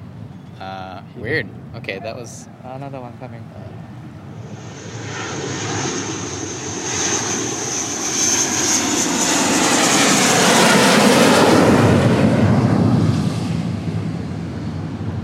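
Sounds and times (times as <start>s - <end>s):
jet aircraft roaring overhead with a high whine: 0.0s - 15.2s
speech: 0.6s - 5.2s.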